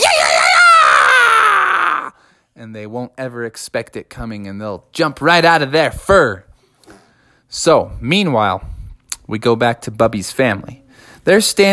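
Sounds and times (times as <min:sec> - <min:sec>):
person screaming imitating a wild banshee: 0:00.0 - 0:02.2
speech: 0:02.6 - 0:06.5, 0:07.5 - 0:11.7.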